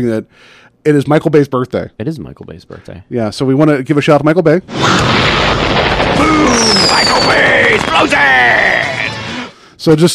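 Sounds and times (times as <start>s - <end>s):
speech: 0.0s - 7.1s, 7.8s - 9.1s, 9.8s - 10.1s
explosion sound effects booming and crackling: 4.6s - 9.4s
whistling sweeping tones: 6.2s - 7.7s.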